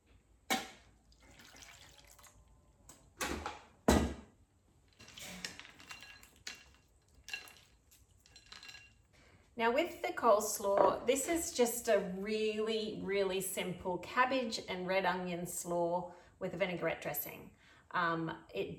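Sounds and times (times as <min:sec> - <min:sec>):
ice water running into a bowl: 0:01.1 - 0:02.5, 0:05.0 - 0:08.6
speech: 0:09.6 - 0:18.7.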